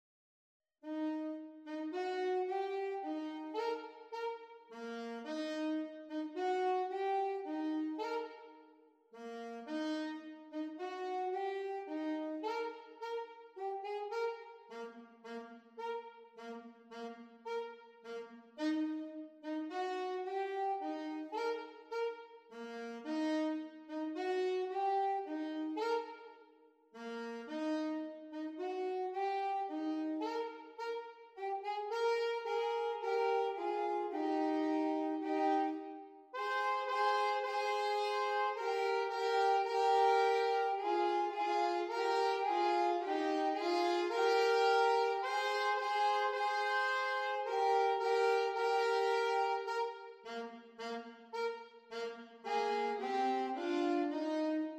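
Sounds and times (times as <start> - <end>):
saxophone duet: 0.8 - 54.7.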